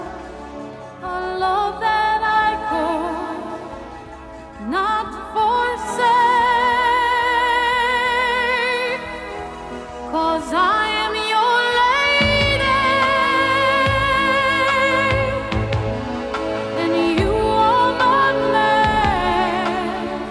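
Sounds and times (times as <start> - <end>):
1980s pop power ballad recording: 0.0 - 20.2
bass and drums: 12.2 - 18.2, 18.8 - 20.2.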